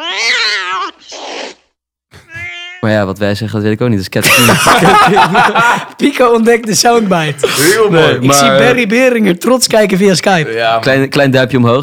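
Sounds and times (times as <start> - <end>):
cat meowing: 0.0 - 1.5, 2.2 - 2.8
cat hissing: 0.0 - 2.8
speech: 2.8 - 11.8
laughter: 4.2 - 8.9.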